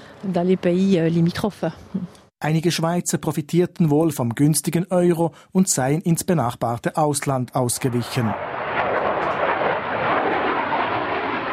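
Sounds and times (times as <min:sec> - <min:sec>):
speech: 0:00.2 - 0:08.6
jet aircraft taking off at the military airfield of Sion in Valais Switzerland: 0:07.8 - 0:11.5.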